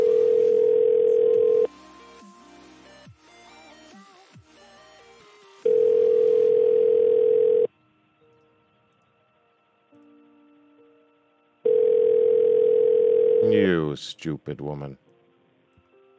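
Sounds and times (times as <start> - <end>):
telephone tones from an outgoing call that goes unanswered: 0.0 - 1.7, 5.6 - 7.7, 11.7 - 13.7
speech: 14.2 - 15.1.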